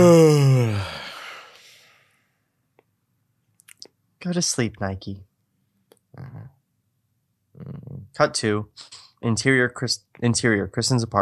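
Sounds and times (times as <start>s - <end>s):
speech: 0.0s - 0.9s, 4.2s - 5.3s, 6.2s - 6.6s, 7.6s - 11.2s
loud drawn-out yawn: 0.0s - 1.8s.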